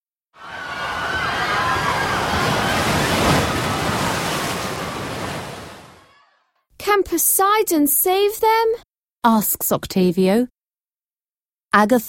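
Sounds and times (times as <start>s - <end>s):
big waves crashing against boats: 0.4s - 6.1s
speech: 7.2s - 10.5s, 11.7s - 12.0s.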